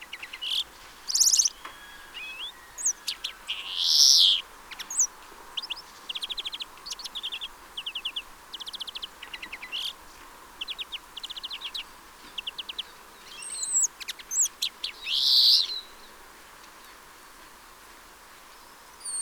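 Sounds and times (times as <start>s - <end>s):
European greenfinch trilling: 0.1s - 10.0s, 10.6s - 15.8s.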